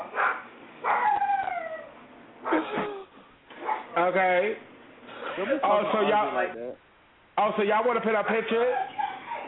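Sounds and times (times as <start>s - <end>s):
dog barking and howling: 0.0s - 2.7s, 8.6s - 9.4s
speech: 4.1s - 4.7s, 5.4s - 8.9s.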